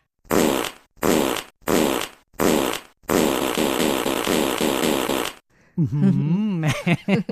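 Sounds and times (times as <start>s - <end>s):
buzzy fart sound effects: 0.3s - 5.4s
laughter: 5.8s - 7.3s
speech: 5.8s - 7.3s.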